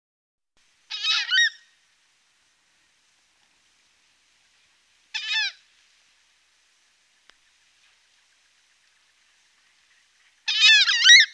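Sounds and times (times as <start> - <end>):
horned screamer giving harsh honking calls in the Pantanal: 0.9 - 1.6, 5.1 - 5.6, 10.4 - 11.3.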